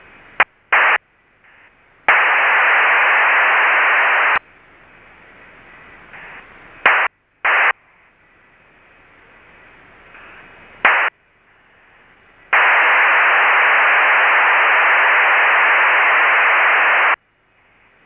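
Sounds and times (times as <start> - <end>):
two radio stations exchanging traffic using a 2400 Bd PSK waveform: 2.1 - 4.4, 6.2 - 7.8, 10.9 - 11.1, 12.6 - 17.2.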